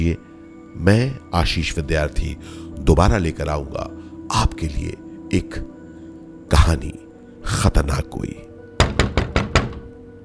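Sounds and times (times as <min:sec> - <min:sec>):
speech: 0:00.0 - 0:05.8, 0:06.5 - 0:08.5
knocking on a door: 0:08.8 - 0:10.0.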